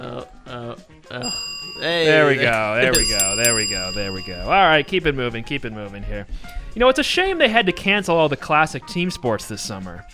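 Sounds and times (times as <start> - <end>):
speech: 1.1 - 10.1
bell ringing with bright sustained metallic tones: 1.2 - 5.1
loud excited voices talking and shouting: 1.2 - 6.0.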